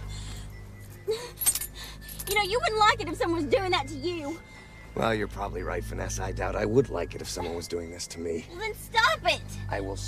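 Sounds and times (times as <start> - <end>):
car keys jangling as picked up from the floor: 0.8 - 2.9
speech: 2.3 - 10.0.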